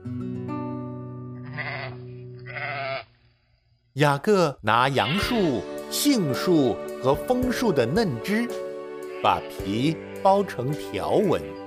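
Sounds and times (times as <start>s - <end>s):
sheep bleating: 1.4s - 3.1s, 8.9s - 11.6s
speech: 4.0s - 8.6s, 9.2s - 11.6s.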